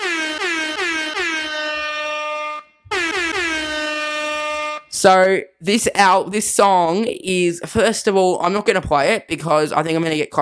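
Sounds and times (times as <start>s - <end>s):
air horn blasts: 0.0s - 5.0s
speech: 5.0s - 10.4s.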